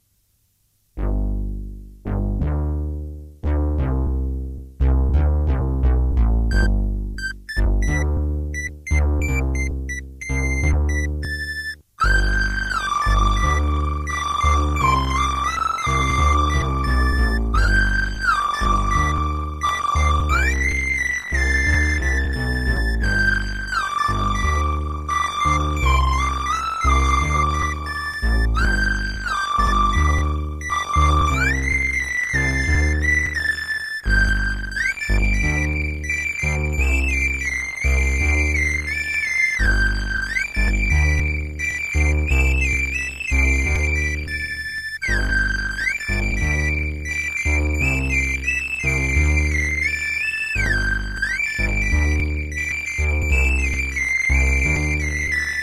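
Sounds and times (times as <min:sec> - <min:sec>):
silly synth song: 0:02.1 - 0:55.6.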